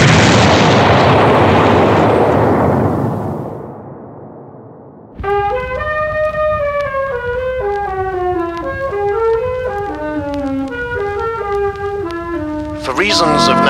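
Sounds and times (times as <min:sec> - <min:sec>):
munitions works explosion: 0:00.0 - 0:05.2
music: 0:05.2 - 0:13.6.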